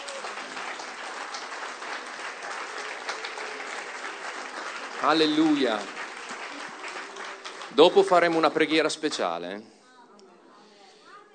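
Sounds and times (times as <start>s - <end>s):
audience applause in a church hall: 0.0s - 9.0s
speech: 5.0s - 6.0s, 7.8s - 9.7s.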